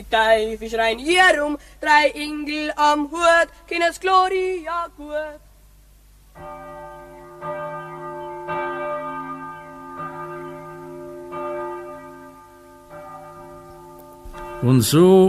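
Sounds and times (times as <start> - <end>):
speech: 0.0 - 5.4, 6.4 - 6.7, 14.6 - 15.2
church bell of a Jesuit church in Passau ringing: 6.4 - 15.2.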